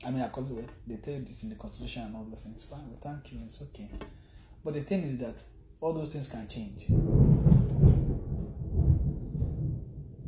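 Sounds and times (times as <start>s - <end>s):
speech: 0.0s - 7.9s
deep rolling thunder rumbling during a thunderstorm: 6.7s - 10.2s.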